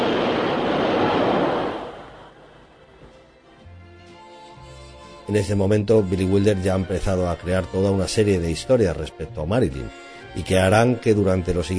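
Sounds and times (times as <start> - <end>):
rushing wind from a subway train passing beneath: 0.0 - 3.0
speech: 5.3 - 11.7.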